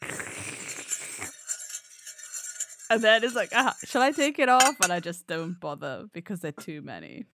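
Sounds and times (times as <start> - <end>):
metal straw tapping inside a new metal cup holding a cold beverage: 0.0 - 5.5
speech: 2.9 - 7.3.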